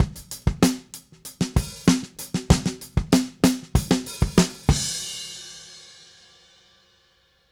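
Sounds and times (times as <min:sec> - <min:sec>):
70s analog funk drums ending: 0:00.0 - 0:05.3.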